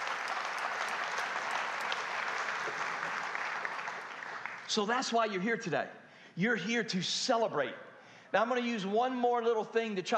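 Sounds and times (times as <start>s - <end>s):
room full of people applauding: 0.0s - 5.0s
speech: 4.7s - 10.1s.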